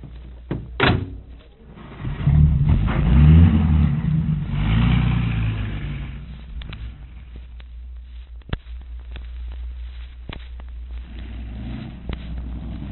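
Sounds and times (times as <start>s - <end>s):
car door thudding shut: 0.5s - 1.2s
car engine starting, revving and driving off: 1.6s - 7.4s, 10.9s - 12.8s.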